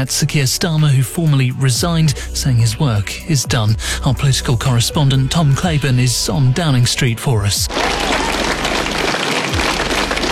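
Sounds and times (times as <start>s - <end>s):
speech: 0.0s - 8.4s
packed crowd of advisers and friends applauding an outgoing prime minister: 7.7s - 10.2s.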